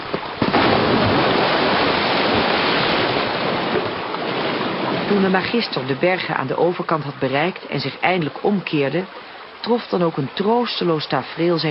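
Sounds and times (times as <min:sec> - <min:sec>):
floodwater rushing through a breached narrow dike: 0:00.0 - 0:11.6
speech: 0:05.1 - 0:11.6.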